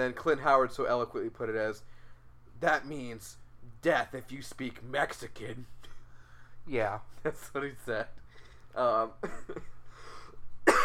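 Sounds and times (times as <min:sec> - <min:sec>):
speech: 0:00.0 - 0:02.0, 0:02.6 - 0:05.8, 0:06.6 - 0:09.7
person coughing harshly: 0:09.2 - 0:09.8, 0:10.6 - 0:10.8
throat clearing: 0:09.2 - 0:09.8, 0:10.7 - 0:10.8.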